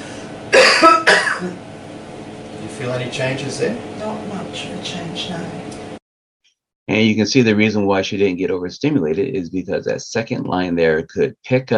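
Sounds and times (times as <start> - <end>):
forceful coughs: 0.5 - 1.6
speech: 1.4 - 1.7, 2.7 - 5.8, 6.9 - 11.7.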